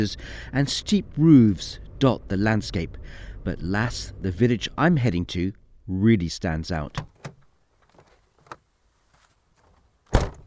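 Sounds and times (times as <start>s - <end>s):
speech: 0.0s - 7.1s
faint clicks and rustles: 7.0s - 10.0s
car door slamming shut at the village entrance in the French Pyrenees: 10.1s - 10.4s.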